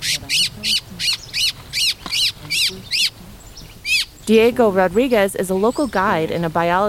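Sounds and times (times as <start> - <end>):
distressed white-throated thrush calling while held in the hand: 0.0 - 4.4
speech: 4.3 - 6.8.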